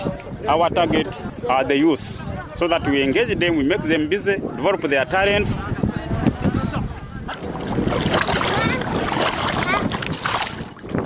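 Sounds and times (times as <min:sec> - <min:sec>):
faint indistinct voices: 0:00.0 - 0:10.7
gusts of wind: 0:00.0 - 0:11.0
speech: 0:00.4 - 0:05.7
water splashing and sloshing around boats: 0:07.3 - 0:11.0
waves washing against an Indian Ocean shoreline: 0:07.3 - 0:11.0.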